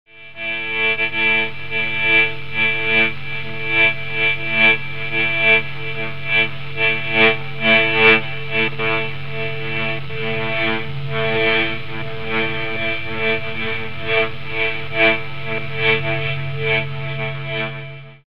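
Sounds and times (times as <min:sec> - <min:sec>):
electric guitar through an earphone: 0:00.2 - 0:18.2.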